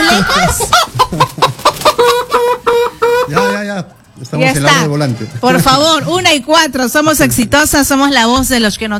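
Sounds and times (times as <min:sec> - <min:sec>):
group of hens clucking and squawking: 0:00.1 - 0:03.7
speech: 0:04.4 - 0:08.9.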